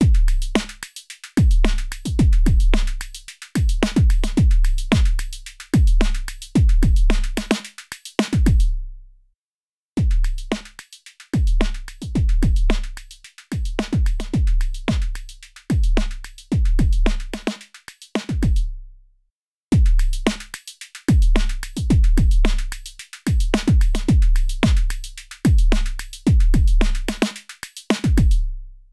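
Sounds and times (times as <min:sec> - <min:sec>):
dance mix drum beat: 0:00.0 - 0:00.3, 0:01.4 - 0:03.0, 0:03.6 - 0:05.2, 0:05.8 - 0:07.4, 0:10.0 - 0:10.7, 0:11.4 - 0:17.3, 0:18.3 - 0:18.6, 0:19.8 - 0:20.0, 0:21.1 - 0:22.7, 0:23.3 - 0:27.3, 0:27.9 - 0:28.4.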